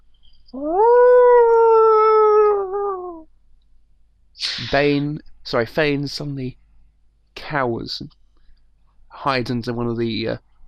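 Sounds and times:
speech: 0.5 - 0.9, 4.7 - 6.6, 7.5 - 8.2, 9.2 - 10.5
long howl at night: 0.6 - 3.2.

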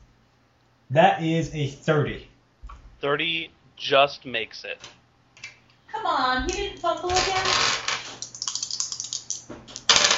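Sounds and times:
speech: 0.9 - 2.3, 3.0 - 5.0, 6.0 - 7.8
many four-sided dice rolling during a tabletop role-playing game: 7.1 - 10.1.

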